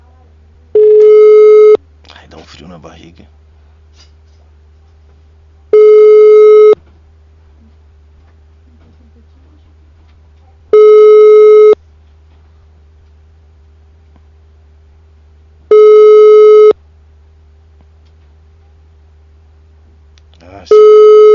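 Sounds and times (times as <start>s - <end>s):
faint low hum: 0.0s - 21.3s
telephone ringback tone during an outgoing call: 0.8s - 1.8s, 5.8s - 6.8s, 10.8s - 11.8s, 15.7s - 16.8s, 20.7s - 21.3s
speech: 2.6s - 3.4s.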